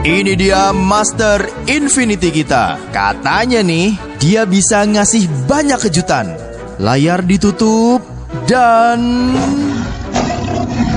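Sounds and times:
speech: 0:00.0 - 0:09.9
tiger roaring with rumbling growl: 0:09.1 - 0:10.9.

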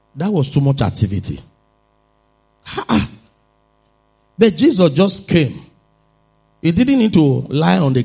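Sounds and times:
speech: 0:00.2 - 0:01.5, 0:04.4 - 0:05.7, 0:06.6 - 0:08.0
male preacher imitating a child's sneeze: 0:02.6 - 0:03.3.

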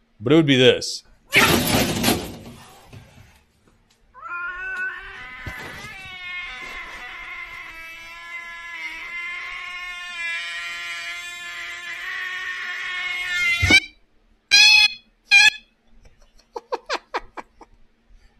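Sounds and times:
speech: 0:00.2 - 0:02.0
cat yowling: 0:04.2 - 0:14.0
laughter: 0:16.1 - 0:17.8.

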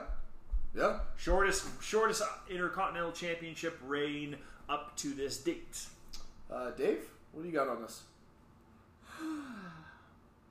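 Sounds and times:
speech: 0:00.7 - 0:08.1, 0:09.1 - 0:09.8
drawn-out breathy yawn with a voiced groan: 0:09.1 - 0:10.0.

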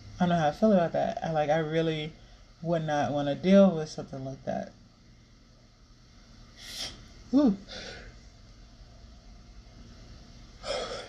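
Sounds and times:
room hiss: 0:00.0 - 0:11.0
speech: 0:00.2 - 0:04.8, 0:06.6 - 0:08.0
person yawning: 0:06.6 - 0:08.1, 0:10.6 - 0:11.0.

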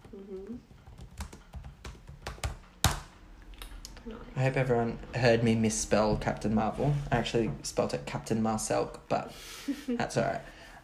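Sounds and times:
typing on a computer keyboard: 0:00.0 - 0:03.1
speech: 0:00.2 - 0:00.8, 0:04.0 - 0:10.6.

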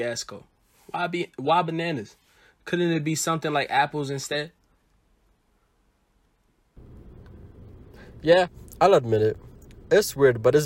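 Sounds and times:
speech: 0:00.0 - 0:04.6, 0:08.2 - 0:10.6
car driving: 0:06.8 - 0:10.6.

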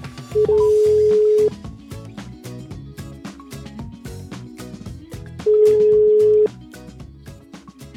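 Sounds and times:
busy rhythmic music bed: 0:00.0 - 0:07.9
telephone line tone of a live call: 0:00.4 - 0:01.5, 0:05.7 - 0:06.5.

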